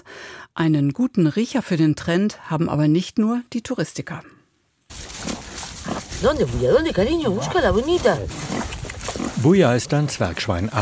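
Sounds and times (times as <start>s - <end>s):
speech: 0.6s - 4.4s, 6.2s - 8.8s, 9.4s - 10.7s
dwarf truffle pig snuffling: 4.9s - 10.7s
dwarf truffle pig in Spain grunting and squealing while rooting in soil: 5.2s - 10.1s.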